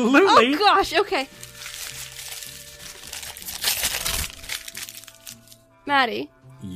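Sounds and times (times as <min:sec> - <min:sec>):
speech: 0:00.0 - 0:01.4, 0:05.9 - 0:06.7
wrapping paper crinkling and rustling as a Christmas gift is unwrapped: 0:01.3 - 0:05.6.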